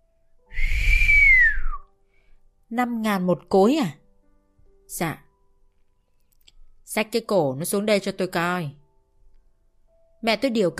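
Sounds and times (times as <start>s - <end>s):
man whistling a single clear tone: 0.5s - 1.8s
speech: 2.7s - 4.0s, 4.9s - 5.2s, 6.9s - 8.8s, 10.2s - 10.7s.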